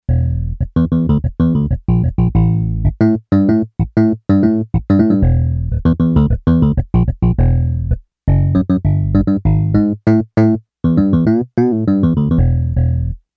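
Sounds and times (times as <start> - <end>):
Yamaha DX11 synthesizer electric bass preset: 0.1 - 13.2.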